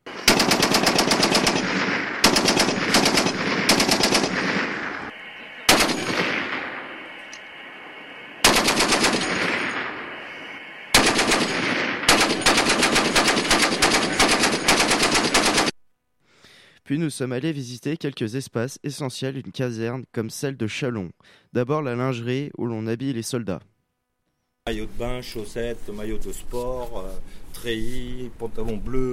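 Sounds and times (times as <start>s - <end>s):
automatic gunfire from a military shooting practice session: 0.1s - 5.1s, 5.7s - 6.8s, 8.4s - 15.8s
speech: 17.0s - 23.7s, 24.7s - 29.1s.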